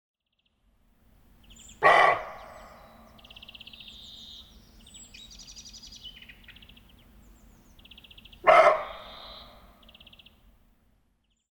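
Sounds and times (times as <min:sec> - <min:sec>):
small birds chirping and trilling softly: 0:01.3 - 0:10.5
roe deer alarm barks: 0:01.7 - 0:03.0, 0:08.4 - 0:09.7.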